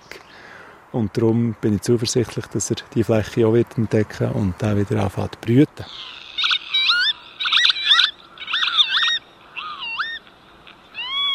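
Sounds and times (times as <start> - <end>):
speech: 0.9 - 6.2
northern lapwing giving wheezy slurred pee-wit calls: 5.9 - 11.3.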